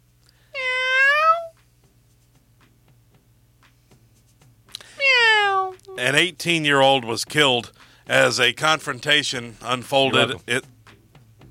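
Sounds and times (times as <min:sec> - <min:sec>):
faint steady hum: 0:00.0 - 0:11.3
cat meowing: 0:00.6 - 0:01.6, 0:04.9 - 0:06.0
speech: 0:06.0 - 0:10.7.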